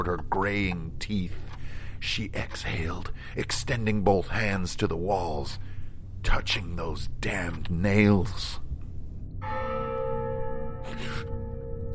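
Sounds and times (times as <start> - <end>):
speech: 0.0 - 1.4, 2.0 - 8.6
clock bell striking: 9.4 - 11.9.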